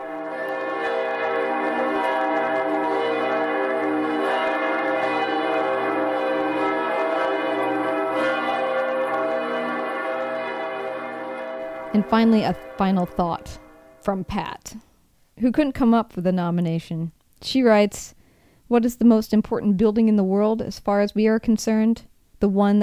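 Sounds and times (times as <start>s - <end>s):
large church bells of Cologne Cathedral pealing: 0.0s - 14.4s
speech: 12.0s - 22.8s.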